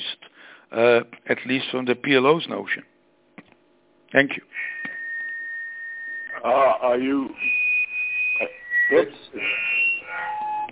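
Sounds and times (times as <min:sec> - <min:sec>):
speech: 0:00.7 - 0:02.9, 0:04.1 - 0:04.7, 0:06.4 - 0:07.6, 0:08.4 - 0:09.7
electronic beeping tones on a telephone line: 0:04.6 - 0:10.6.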